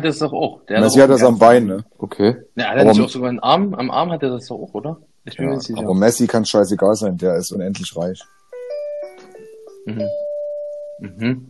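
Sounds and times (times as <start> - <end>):
speech: 0.0 - 8.4, 9.8 - 10.3, 11.0 - 11.4
electronic doorbell chiming a descending melody: 8.5 - 11.0.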